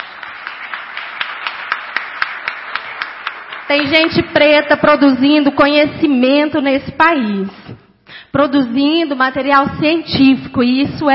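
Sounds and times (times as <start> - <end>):
steady even beat of claps: 0.0 - 4.7
applause: 0.0 - 4.9
speech: 3.7 - 7.7, 8.4 - 11.1.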